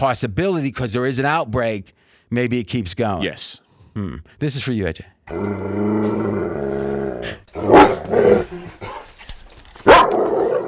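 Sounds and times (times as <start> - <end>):
speech: 0.0 - 8.9
dog barking: 7.7 - 8.0, 9.8 - 10.6.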